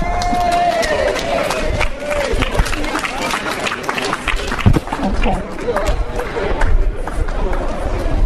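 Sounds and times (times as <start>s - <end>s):
large crowd applauding and cheering: 0.0s - 8.1s.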